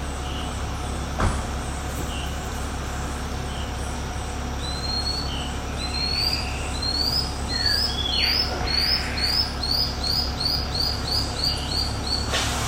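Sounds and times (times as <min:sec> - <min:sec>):
steady background noise: 0:00.0 - 0:12.6
Lanceolated monklet calling: 0:04.6 - 0:12.4.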